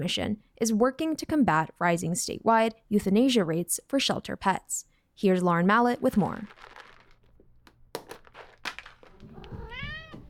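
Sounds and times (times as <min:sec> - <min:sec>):
speech: 0:00.0 - 0:06.8
treat container shaking: 0:05.9 - 0:09.8
cats at a cat cafe meowing, begging for treats: 0:09.1 - 0:10.2.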